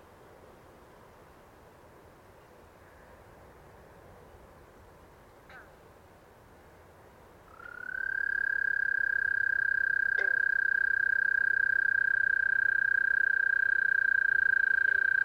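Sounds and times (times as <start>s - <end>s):
Green Frogs calling: 7.4s - 15.2s
Eastern American toad long trilling call: 7.5s - 15.2s.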